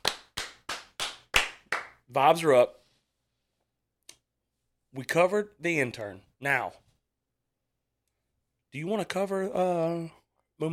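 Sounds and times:
hand claps to welcome a newly hired intern: 0.0s - 2.0s
speech: 2.1s - 2.8s, 4.9s - 6.8s, 8.7s - 10.7s.

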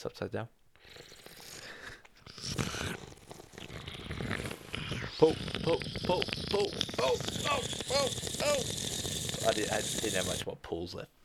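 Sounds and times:
speech: 0.0s - 1.1s, 5.2s - 11.2s
wet mouth sounds working up saliva: 0.8s - 10.5s
person grunting: 5.2s - 10.4s.

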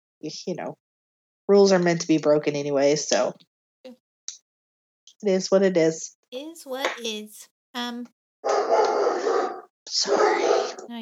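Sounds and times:
speech: 0.2s - 0.8s, 1.5s - 4.0s, 5.2s - 9.3s, 9.9s - 11.0s
male dog barking loudly: 8.4s - 10.9s.

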